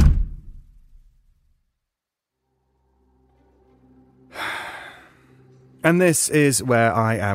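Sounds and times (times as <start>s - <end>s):
kitchen door slamming shut: 0.0s - 0.7s
loud breathy sigh: 4.3s - 5.5s
speech: 5.9s - 7.3s.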